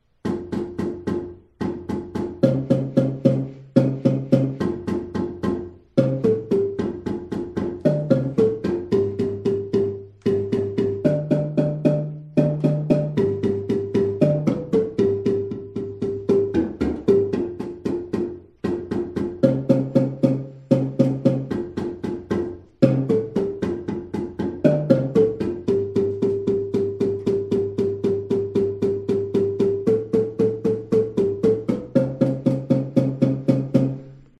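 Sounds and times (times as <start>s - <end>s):
layered bass: 0.0s - 34.3s
marimba: 0.3s - 34.3s.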